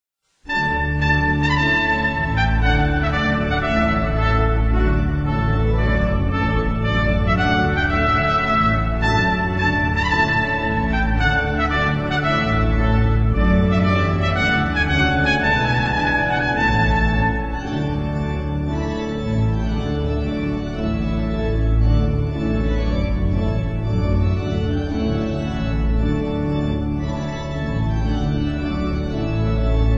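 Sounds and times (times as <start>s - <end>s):
baroque trumpet piece: 0.5s - 29.9s.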